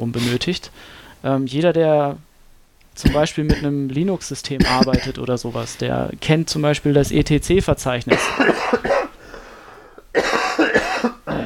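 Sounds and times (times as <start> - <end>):
speech: 0.0 - 2.3, 3.0 - 9.0
harsh chesty coughing from a man with a heavy cold: 3.0 - 3.7, 4.6 - 5.2, 8.1 - 9.2, 10.1 - 11.4.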